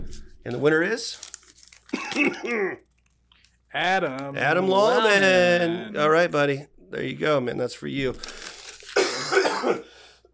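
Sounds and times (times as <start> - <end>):
speech: 0.4 - 1.3, 2.1 - 2.9, 3.7 - 8.4, 9.6 - 10.3
harsh raspy cough from a sick person: 1.9 - 2.8, 8.9 - 10.3.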